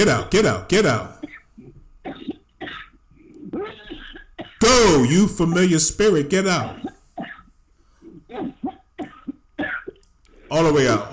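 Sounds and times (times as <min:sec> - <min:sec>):
speech: 0:00.0 - 0:01.2, 0:04.6 - 0:06.8, 0:10.5 - 0:11.1
throaty clearing: 0:01.2 - 0:04.6, 0:06.7 - 0:07.5, 0:08.1 - 0:10.0
harsh raspy coughs: 0:01.2 - 0:04.7, 0:06.6 - 0:10.0.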